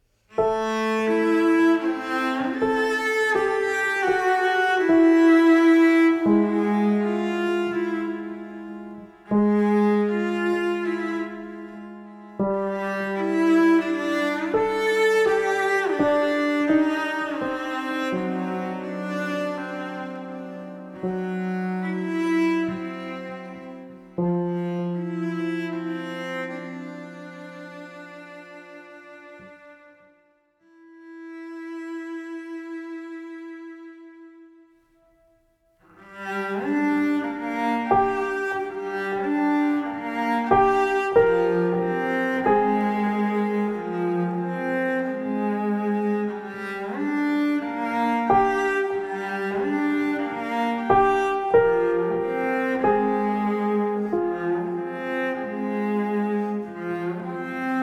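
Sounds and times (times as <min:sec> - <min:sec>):
cello: 0:00.0 - 0:57.8
piano: 0:00.0 - 0:57.8.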